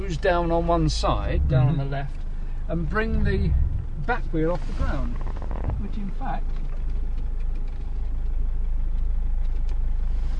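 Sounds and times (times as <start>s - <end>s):
car engine humming during a cornering handling test: 0.0s - 10.3s
speech: 0.1s - 6.6s.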